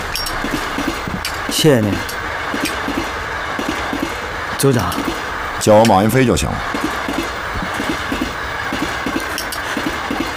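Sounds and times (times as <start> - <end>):
train running on rails: 0.0 - 10.3
speech: 1.6 - 2.1, 4.6 - 6.8.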